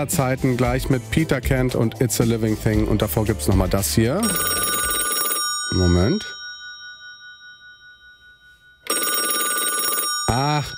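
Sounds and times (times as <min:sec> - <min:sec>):
speech: 0:00.0 - 0:04.8, 0:05.7 - 0:06.4
telephone ringing with a steady electronic tone: 0:04.2 - 0:10.7.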